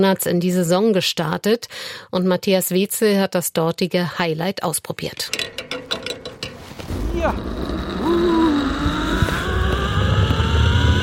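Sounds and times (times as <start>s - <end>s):
speech: 0.0s - 5.6s, 6.9s - 8.4s
low rumbling: 5.3s - 11.0s
pulley whirring on a steel zip-line cable high above a reservoir dam: 7.0s - 11.0s.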